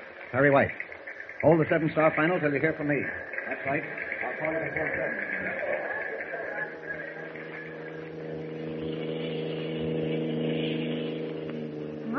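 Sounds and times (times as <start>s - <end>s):
faint mid-pitched whir: 0.0s - 12.1s
speech: 0.3s - 5.8s
car driving on a road with a low engine hum: 3.2s - 12.1s.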